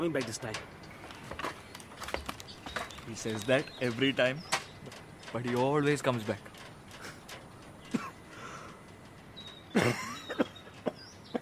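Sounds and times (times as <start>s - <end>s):
speech: 0.0s - 1.4s, 3.1s - 6.5s
man coughing: 7.9s - 8.2s, 9.7s - 11.0s.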